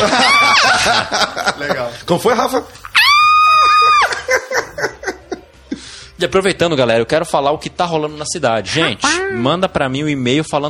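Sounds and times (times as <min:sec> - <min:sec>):
person letting out a loud high-pitched excited victory scream: 0:00.0 - 0:00.9, 0:02.9 - 0:04.4
short bursts of laughter: 0:00.0 - 0:05.7
speech: 0:00.8 - 0:02.9, 0:06.2 - 0:10.6.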